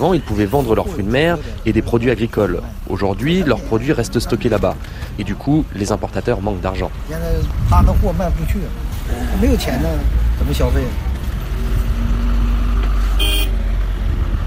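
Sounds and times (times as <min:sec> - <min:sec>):
speech: 0:00.0 - 0:11.1
heavy trucks rumbling while crossing a border: 0:00.0 - 0:14.4
single short bright horn toot: 0:13.1 - 0:13.6.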